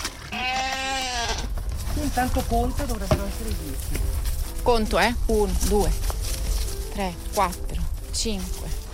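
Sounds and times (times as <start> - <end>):
sheep bleating: 0.2 - 1.5
speech: 2.1 - 6.1, 7.0 - 8.8.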